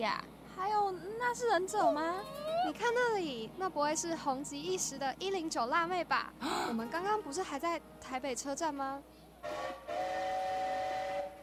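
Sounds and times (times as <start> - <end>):
speech: 0.0 - 9.8
train whistle blasts as a train is about to depart: 9.4 - 11.4.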